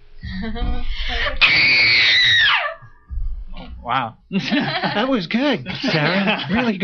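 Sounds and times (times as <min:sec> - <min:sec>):
speech: 0:00.4 - 0:02.2, 0:03.8 - 0:06.8
woman's horror-movie scream: 0:01.2 - 0:02.8
laughter: 0:03.9 - 0:06.8.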